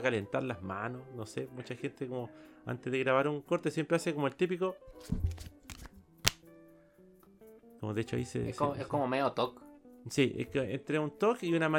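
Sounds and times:
speech: 0.0s - 5.6s, 7.8s - 11.7s
playing cards being swing cut: 5.0s - 6.5s.

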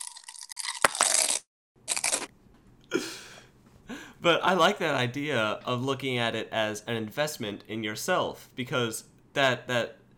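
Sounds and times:
crisps being bitten and chewed: 0.0s - 2.3s
speech: 4.2s - 10.0s.

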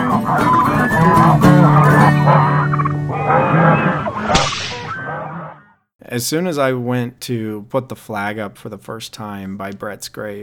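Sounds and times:
flock of geese honking: 0.0s - 5.5s
speech: 6.1s - 10.4s.

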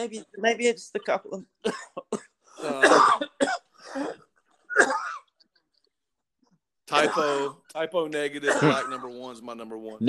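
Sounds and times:
speech: 0.0s - 4.2s, 6.9s - 10.0s
person coughing with something caught in the throat: 1.6s - 5.3s, 7.0s - 7.6s, 8.4s - 9.2s
person clearing throat with something caught in it: 1.7s - 5.3s, 6.9s - 7.6s, 8.4s - 9.2s.

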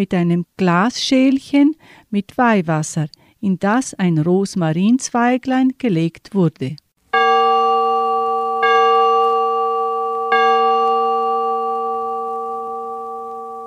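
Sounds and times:
speech: 0.0s - 6.8s
church bell tolling for a death: 7.2s - 13.6s.

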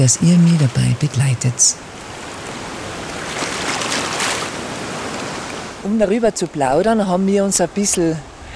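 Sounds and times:
speech: 0.0s - 2.0s, 5.8s - 8.3s
water of the Isel river rushing: 0.0s - 6.2s.

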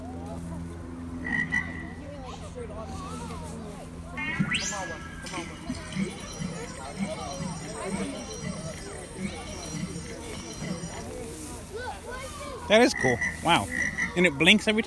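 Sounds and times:
faint murmuring voices: 0.0s - 14.8s
frog croaking: 1.2s - 2.0s, 4.2s - 11.2s, 12.8s - 14.3s
speech: 4.6s - 5.5s, 12.7s - 14.8s.

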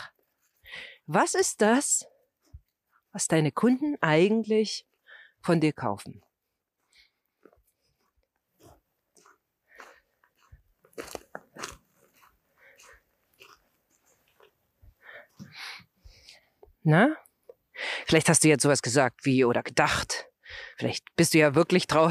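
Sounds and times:
speech: 1.1s - 2.2s, 3.1s - 6.3s, 16.8s - 17.2s, 18.0s - 22.0s
footsteps crunching through snow: 6.0s - 15.6s.

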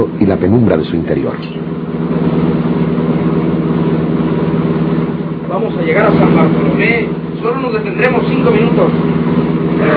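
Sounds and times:
speech: 0.0s - 1.9s, 5.6s - 9.2s, 9.8s - 9.9s
bus engine running: 0.0s - 9.9s.

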